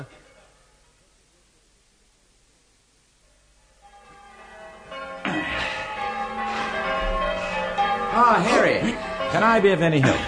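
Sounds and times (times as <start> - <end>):
church bells ringing: 3.8 - 10.2
speech: 8.2 - 10.2.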